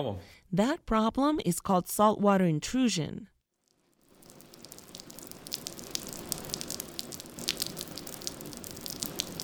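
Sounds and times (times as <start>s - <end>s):
speech: 0.0s - 3.3s
rain shower in South Florida: 4.0s - 9.4s.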